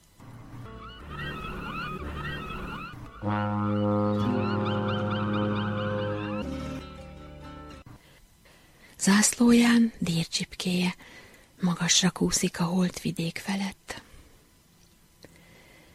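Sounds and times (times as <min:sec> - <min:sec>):
big ship horn blast while weighing anchor: 0:00.2 - 0:07.8
honking bird-like calls: 0:00.3 - 0:06.9
speech: 0:03.2 - 0:03.8, 0:09.0 - 0:14.0.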